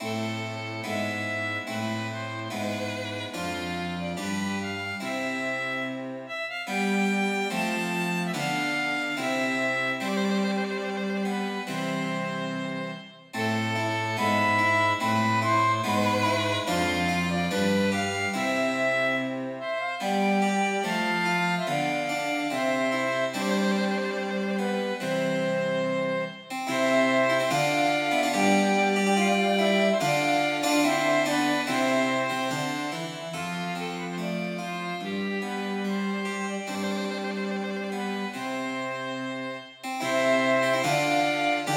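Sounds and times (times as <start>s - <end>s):
cello playing an air: 0.0s - 41.7s
flute playing an air: 0.0s - 41.7s
harpsichord playing an air: 0.0s - 41.7s
violin playing an air: 0.0s - 41.7s.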